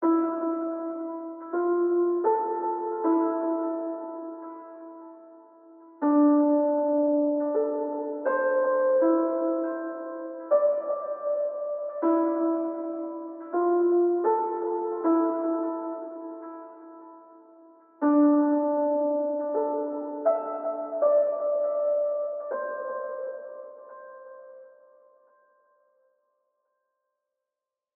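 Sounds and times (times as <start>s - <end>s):
isolated piano in E minor: 0.0s - 26.2s.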